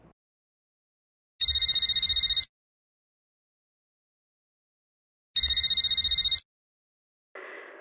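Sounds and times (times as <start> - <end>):
telephone with a bright trilling electronic ring: 1.4 - 2.5, 5.4 - 6.4.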